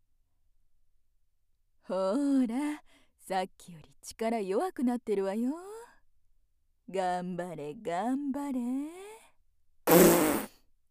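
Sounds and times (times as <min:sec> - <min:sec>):
speech: 0:01.9 - 0:05.7, 0:06.9 - 0:09.1
woman's loud raspy fart: 0:09.9 - 0:10.6.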